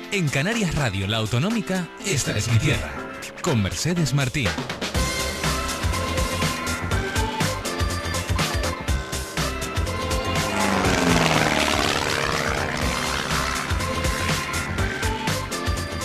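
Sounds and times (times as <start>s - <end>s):
speech: 0.1s - 4.9s
small light propeller airplane flying overhead: 5.0s - 16.0s.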